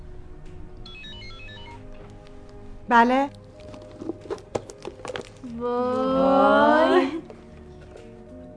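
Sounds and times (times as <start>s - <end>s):
mobile phone ringing with bright melodic electronic ringtone: 0.9s - 1.9s
speech: 2.9s - 3.4s, 5.5s - 7.2s.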